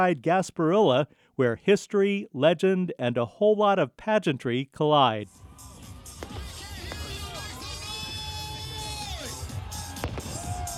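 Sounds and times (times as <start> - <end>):
speech: 0.0 - 5.4
street crowd cheering at a pirate parade in downtown Tampa on a cold windy day: 5.3 - 10.7.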